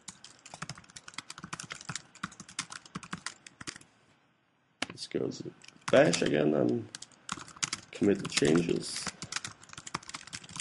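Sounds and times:
code being typed on a computer keyboard: 0.0s - 3.8s, 5.6s - 10.5s
speech: 5.0s - 7.0s, 8.0s - 9.2s.

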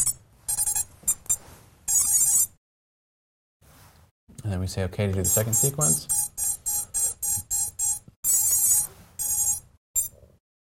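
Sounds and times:
quadcopter ESC beeping during motor calibration setup sequence: 0.0s - 2.5s, 5.3s - 10.2s
speech: 4.4s - 6.4s.

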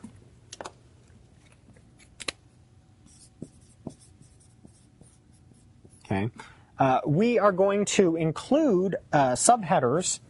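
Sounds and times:
low hiss: 0.0s - 10.2s
pen sketching a diagram on paper: 3.1s - 6.1s
speech: 6.1s - 10.2s.

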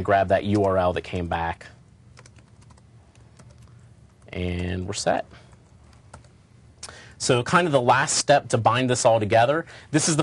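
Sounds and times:
speech: 0.0s - 1.8s, 4.3s - 5.4s, 7.2s - 10.2s
low hum: 0.0s - 10.2s
fingers typing quickly on a computer keyboard: 0.4s - 1.3s, 2.1s - 4.8s, 5.5s - 6.3s.

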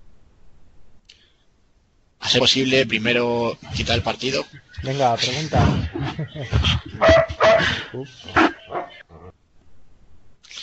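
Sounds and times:
faint noise: 0.0s - 10.6s
speech: 2.3s - 8.5s
laughter: 3.6s - 9.0s
dog barking: 7.0s - 9.3s.

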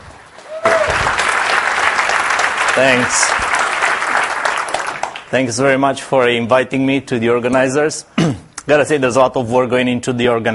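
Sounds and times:
audience applause at a C++ programming conference: 0.0s - 5.5s
speech: 2.8s - 3.5s, 5.3s - 10.5s.

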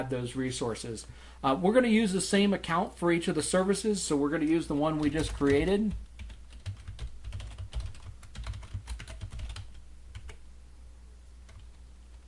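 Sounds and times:
speech: 0.0s - 6.0s
low steady hum: 0.0s - 12.2s
typing on a computer keyboard: 5.0s - 10.4s, 11.5s - 11.8s.

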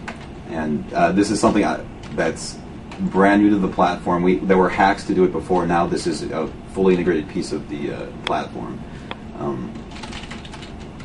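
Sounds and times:
typing on a computer keyboard: 0.0s - 0.3s, 9.7s - 11.0s
speech: 0.5s - 10.1s.

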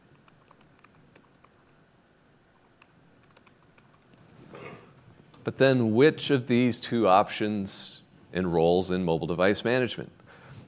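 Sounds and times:
typing an email address on a computer keyboard: 0.0s - 1.7s, 2.6s - 4.2s
speech: 5.5s - 10.2s.

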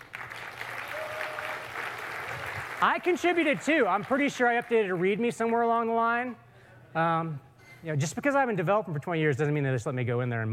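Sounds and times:
audience applause at a developer conference talk: 0.0s - 5.2s
speech: 2.8s - 10.5s.

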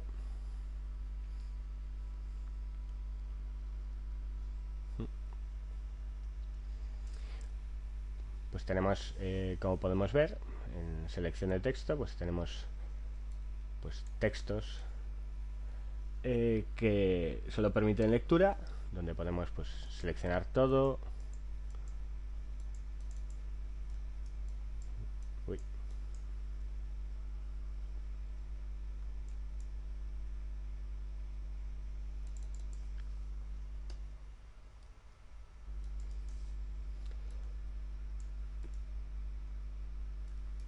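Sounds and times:
steady low electrical hum: 0.0s - 40.6s
speech: 8.6s - 12.7s, 13.8s - 14.9s, 16.2s - 21.1s, 25.5s - 25.7s
light keyboard typing: 21.0s - 26.3s, 32.2s - 33.2s, 35.8s - 38.9s, 40.2s - 40.6s
computer mouse clicks: 21.1s - 22.0s, 22.6s - 26.3s, 32.2s - 33.2s, 35.8s - 37.6s, 38.2s - 38.9s, 40.2s - 40.6s.

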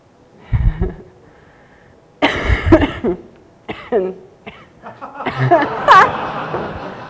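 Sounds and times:
person coughing fit with harsh rough coughs: 2.2s - 5.7s
laughter: 4.8s - 7.0s.

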